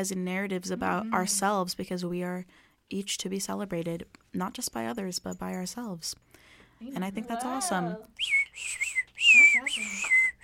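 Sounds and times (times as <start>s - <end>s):
speech: 0.0s - 10.2s
bird whistling indoors: 8.2s - 10.4s.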